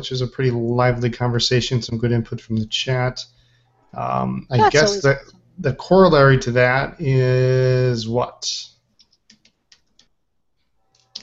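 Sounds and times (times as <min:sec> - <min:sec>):
speech: 0:00.0 - 0:08.7
clicky keyboard typing: 0:09.0 - 0:10.2.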